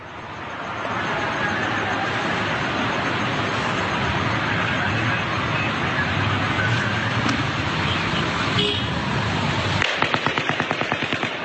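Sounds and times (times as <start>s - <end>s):
car driving with road and engine noise: 0.0s - 11.4s
rapid gunfire fired from a high window: 9.8s - 11.4s.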